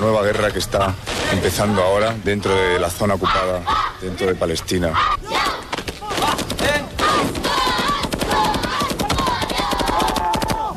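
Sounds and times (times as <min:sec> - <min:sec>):
speech: 0:00.0 - 0:05.3
automatic weapons gunfire bursts: 0:06.2 - 0:10.6.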